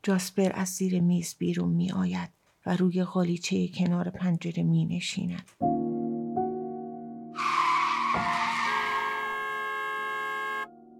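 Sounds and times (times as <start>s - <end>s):
speech: 0.0s - 5.9s
large vehicle brakes screeching: 7.4s - 10.7s
car horn blasts: 8.3s - 10.7s.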